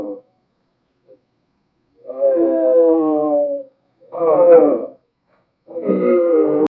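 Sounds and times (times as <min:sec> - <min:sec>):
low pitched pixelated growl: 0:02.1 - 0:05.0, 0:05.7 - 0:06.7.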